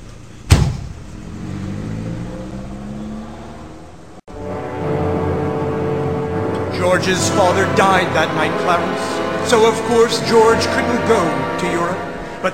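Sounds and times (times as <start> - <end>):
car engine starting and revving as the car pulls away: 0.2 - 12.5
car door slamming shut: 0.5 - 1.1
speech: 6.8 - 12.5.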